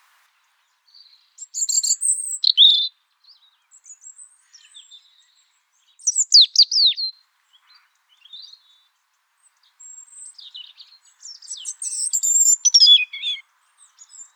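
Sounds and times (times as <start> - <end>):
European robin Erithacus rubecula giving high thin warbled phrases: 1.6 - 2.9, 6.1 - 7.1, 11.5 - 13.4.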